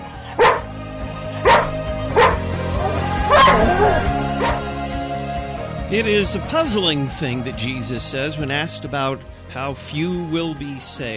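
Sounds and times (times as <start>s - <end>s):
dog barking sharply: 0.4s - 0.7s, 1.4s - 2.5s, 3.3s - 4.6s
speech: 5.9s - 11.1s.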